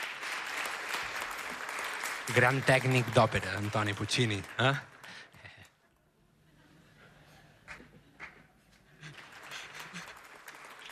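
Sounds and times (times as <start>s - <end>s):
audience scattered applause: 0.0s - 5.6s, 8.2s - 10.9s
speech: 2.3s - 4.9s.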